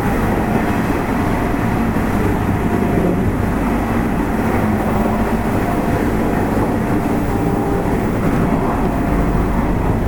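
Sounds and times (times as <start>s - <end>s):
Nishitetsu 8000 series train rumble heard from inside: 0.0s - 10.0s
faint tonal whines: 4.6s - 10.0s.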